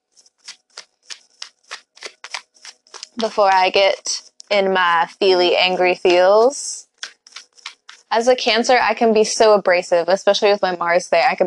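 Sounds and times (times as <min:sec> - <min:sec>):
tarot card deck being shuffled: 0:00.1 - 0:03.7, 0:07.0 - 0:08.1
speech: 0:03.2 - 0:06.7, 0:08.1 - 0:11.4.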